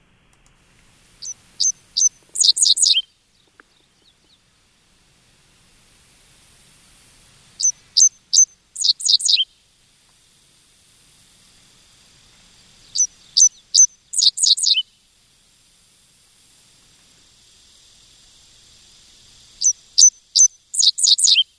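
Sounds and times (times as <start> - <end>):
dickcissel song: 0.4 - 4.4, 7.6 - 9.5, 12.3 - 14.8, 18.0 - 21.4.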